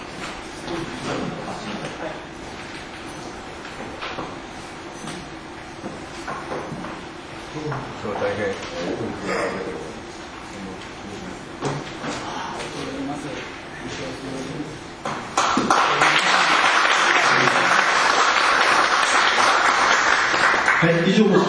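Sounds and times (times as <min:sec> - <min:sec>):
murmuring room noise: 0:00.0 - 0:21.4
speech: 0:00.7 - 0:02.4, 0:08.0 - 0:09.9, 0:21.1 - 0:21.4
audience applause: 0:15.4 - 0:21.4.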